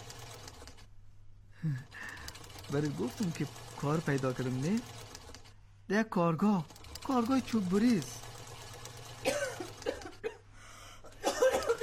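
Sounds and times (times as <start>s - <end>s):
sewing machine running: 0.0s - 0.9s, 1.8s - 5.5s, 6.4s - 10.2s
speech: 1.6s - 2.1s, 2.7s - 5.0s, 5.9s - 8.2s.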